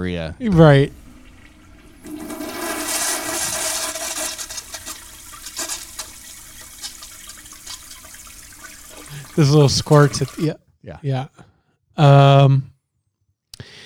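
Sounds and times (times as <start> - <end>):
speech: 0.0 - 1.0, 9.4 - 12.7
toilet flushing: 0.0 - 10.6
water trickling and dripping as toilet bowl drains: 0.4 - 10.6.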